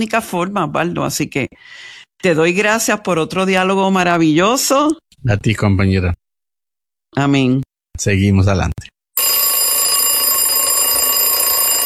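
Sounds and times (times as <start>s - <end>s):
speech: 0.0s - 6.2s, 7.1s - 8.9s
alarm clock ringing with high-pitched electronic tone: 9.2s - 11.8s.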